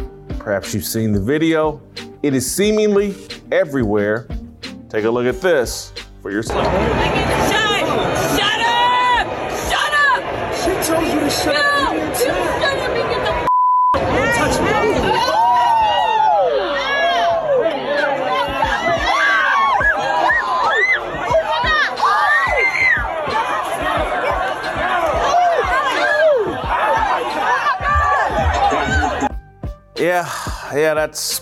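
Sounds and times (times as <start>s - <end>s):
speech: 0.4s - 4.3s, 4.9s - 7.5s, 30.0s - 31.4s
crowd shouting and yelling during a melee in the stands at an exhibition game: 6.5s - 29.4s.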